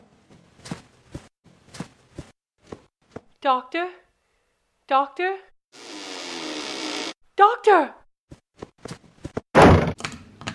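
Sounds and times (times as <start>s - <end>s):
speech: 3.4s - 4.0s, 4.9s - 5.5s, 7.4s - 8.0s
door being shut and locked: 9.6s - 10.0s.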